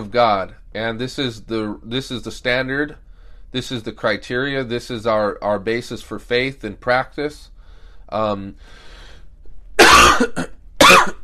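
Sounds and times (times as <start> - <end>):
speech: 0.0 - 7.5, 8.1 - 8.9, 9.8 - 10.6
person coughing: 9.8 - 11.2.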